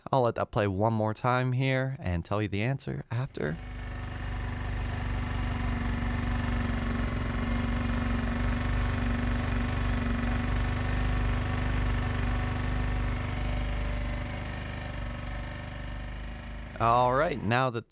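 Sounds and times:
speech: 0.1 - 3.8, 16.8 - 17.9
1992 Yamaha XT 600 single-cylinder motorcycle engine idling: 3.6 - 17.4.

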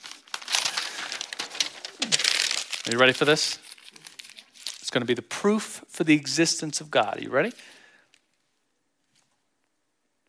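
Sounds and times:
paper being picked up and rustled: 0.0 - 4.8
speech: 2.9 - 3.6, 4.9 - 7.8.

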